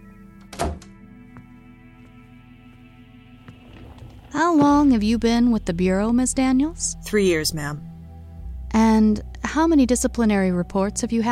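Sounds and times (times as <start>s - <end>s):
door shutting with a brief rattle: 0.4s - 1.0s
speech: 4.3s - 7.9s, 9.0s - 11.2s.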